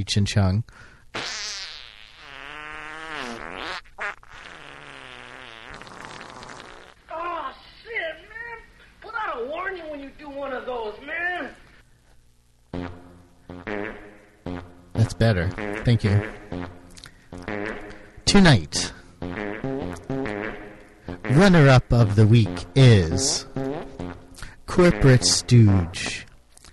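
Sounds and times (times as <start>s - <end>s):
speech: 0.0s - 1.4s, 15.3s - 16.8s, 18.4s - 18.9s, 21.4s - 23.5s, 24.8s - 26.2s
fart sound effects: 1.1s - 7.0s, 12.7s - 26.3s.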